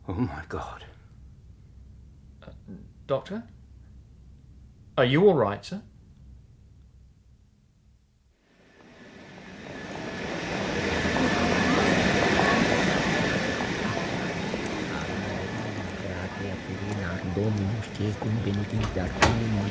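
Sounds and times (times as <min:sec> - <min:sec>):
speech: 0:00.1 - 0:00.9, 0:02.7 - 0:03.6, 0:05.0 - 0:05.9, 0:17.4 - 0:19.6
passenger train rumbling along rails: 0:08.6 - 0:19.6.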